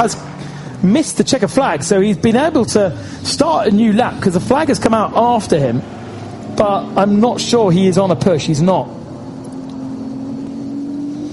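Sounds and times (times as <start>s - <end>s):
speech: 0.0s - 6.0s, 6.6s - 9.0s
Aston Martin racing car engine droning during a race: 0.0s - 11.3s
road and wind noise from a racing car: 0.0s - 11.3s.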